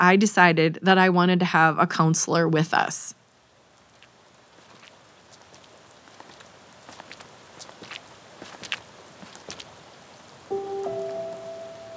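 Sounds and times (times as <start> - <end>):
speech: 0.0 - 3.2
steady rain on a hard surface: 2.7 - 11.9
water drips: 3.2 - 11.9.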